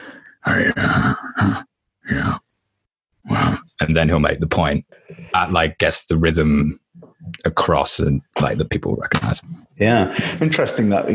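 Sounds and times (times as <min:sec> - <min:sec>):
person imitating a little grumbling groan: 0:00.4 - 0:02.4
speech: 0:00.6 - 0:01.6, 0:03.8 - 0:06.8, 0:07.4 - 0:11.1.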